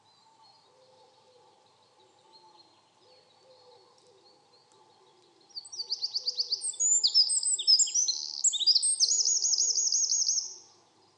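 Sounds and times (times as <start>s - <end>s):
Eurasian wren Troglodytes troglodytes singing: 5.5s - 10.7s.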